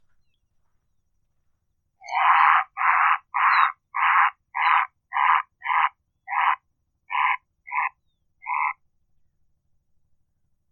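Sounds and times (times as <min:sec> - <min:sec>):
grey heron calling: 0:02.0 - 0:08.8.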